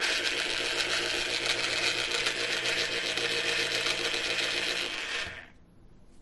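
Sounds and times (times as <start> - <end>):
electric can opener: 0.0 - 5.6.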